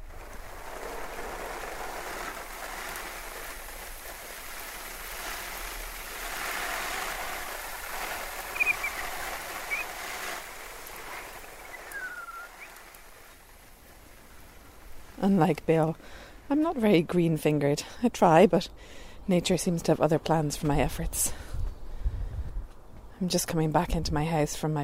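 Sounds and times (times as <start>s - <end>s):
water pouring from a watering can or hose onto outdoor tomato plants: 0.0s - 15.1s
faint bird chirps: 8.5s - 10.0s, 11.4s - 12.9s
speech: 15.2s - 21.5s, 23.2s - 24.8s.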